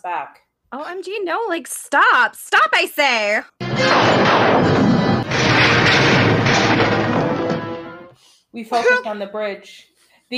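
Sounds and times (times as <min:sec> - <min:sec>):
speech: 0:00.0 - 0:05.0, 0:08.5 - 0:10.3
starship phaser fire sound effect barrage: 0:03.6 - 0:08.1.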